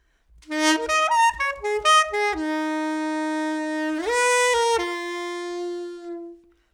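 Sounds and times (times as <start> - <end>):
soprano saxophone playing classic pop: 0.4 - 6.7.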